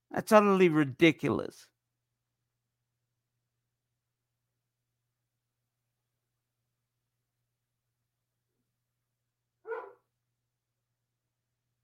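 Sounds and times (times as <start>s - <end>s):
speech: 0.1s - 1.7s
single short dog bark: 9.6s - 10.1s.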